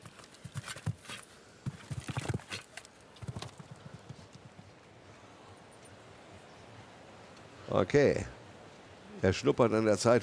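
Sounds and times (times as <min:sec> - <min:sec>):
show-jumping horse galloping hoofbeats on course: 0:00.0 - 0:04.8
steady noise: 0:00.0 - 0:10.2
speech: 0:07.7 - 0:08.4, 0:09.2 - 0:10.2.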